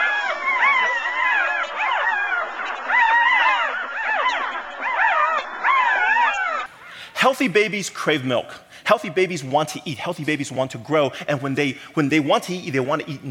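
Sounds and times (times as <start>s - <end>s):
puppies whimpering and yipping: 0.0s - 6.7s
speech: 7.2s - 13.2s.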